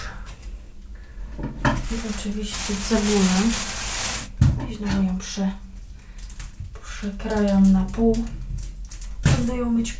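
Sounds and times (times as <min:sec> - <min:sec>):
soft kitchen rummaging: 0:01.8 - 0:04.1
speech: 0:01.9 - 0:03.8, 0:04.7 - 0:05.7, 0:07.0 - 0:08.4, 0:09.4 - 0:09.9.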